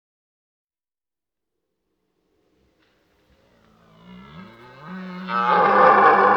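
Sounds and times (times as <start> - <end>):
deer moaning and roaring: 3.4 - 6.3.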